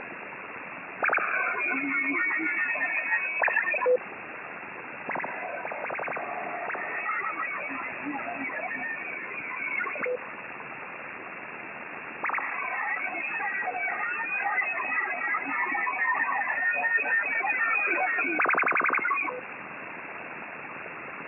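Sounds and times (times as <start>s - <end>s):
analogue FFT voice scrambler on a radio: 1.0s - 4.0s, 5.1s - 10.2s, 12.2s - 19.4s.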